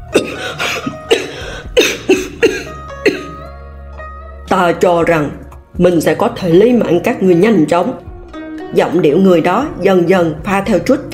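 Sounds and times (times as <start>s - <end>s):
man coughing violently: 0.1s - 3.5s
speech: 4.6s - 8.1s, 8.7s - 11.1s.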